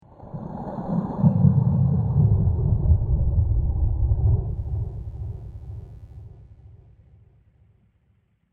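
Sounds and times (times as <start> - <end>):
underwater bubbles: 0.1 - 5.8.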